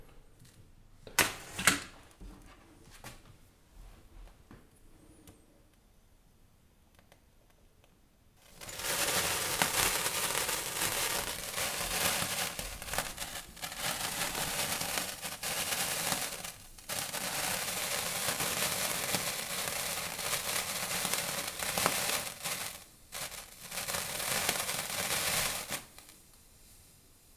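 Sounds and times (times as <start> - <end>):
sparkler being lit: 8.5 - 27.0.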